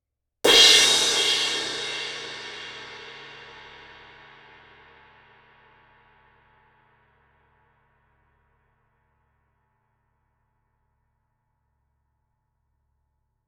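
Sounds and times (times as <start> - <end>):
symphonic suspended 18 inch small ride cymbal struck with stick: 0.5 - 4.9.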